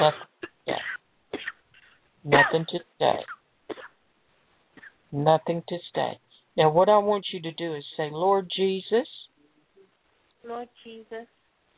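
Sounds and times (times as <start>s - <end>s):
speech: 0.0s - 0.8s, 2.2s - 3.4s, 5.1s - 9.2s, 10.4s - 11.4s
people clearing throats: 0.0s - 3.9s
people coughing: 0.0s - 4.0s.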